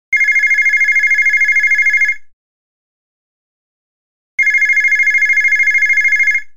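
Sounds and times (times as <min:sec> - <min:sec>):
DM-L200 electric phone ringtone: 0:00.2 - 0:02.2, 0:04.4 - 0:06.5.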